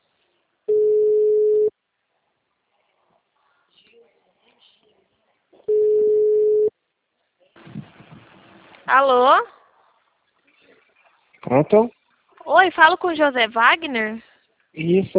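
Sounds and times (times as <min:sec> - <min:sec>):
telephone line tones while placing a call: 0:00.7 - 0:01.7, 0:05.7 - 0:06.7
faint rustling noise: 0:02.0 - 0:05.7, 0:07.1 - 0:15.1
brief burst of noise: 0:07.6 - 0:08.9
speech: 0:08.9 - 0:09.6, 0:11.5 - 0:15.1.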